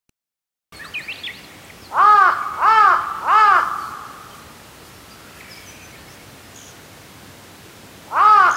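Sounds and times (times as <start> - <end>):
large-billed crow cawing: 1.9 - 4.4, 8.1 - 8.5.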